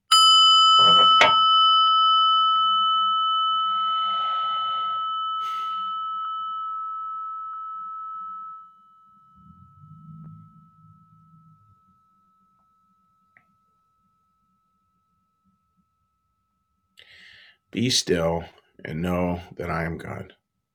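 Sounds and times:
small prayer bell struck before a meditation: 0:00.1 - 0:14.7
speech: 0:17.8 - 0:20.4.

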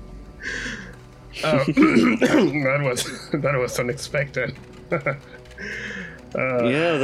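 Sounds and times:
speech: 0:01.4 - 0:07.0
short raspy cough from laughter: 0:01.8 - 0:03.4.

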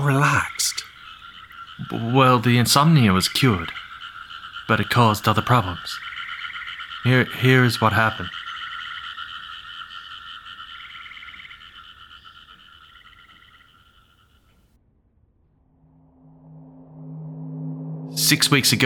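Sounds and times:
speech: 0:00.0 - 0:00.8, 0:01.8 - 0:03.8, 0:04.7 - 0:06.0, 0:07.0 - 0:08.4, 0:18.3 - 0:18.8
dense chorus of frogs trilling and croaking: 0:00.0 - 0:14.7
deeper steady droning frog croak: 0:00.0 - 0:18.8.

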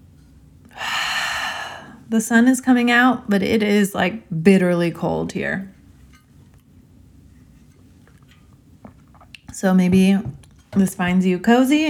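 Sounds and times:
deep breath drawn in: 0:00.7 - 0:02.1
speech: 0:02.1 - 0:05.8, 0:09.6 - 0:11.8.

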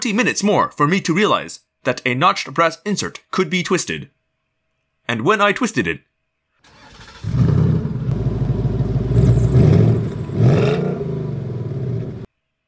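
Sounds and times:
speech: 0:00.0 - 0:04.2, 0:05.1 - 0:06.1
primitive chemical combustion engine cranking, starting and roaring: 0:06.7 - 0:12.3.

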